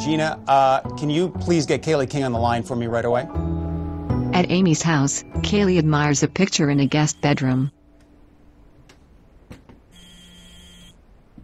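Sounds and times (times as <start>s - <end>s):
speech: 0.0s - 3.6s, 4.3s - 7.8s
cell phone ringing with a bright electronic trill: 6.6s - 7.8s, 10.0s - 11.0s.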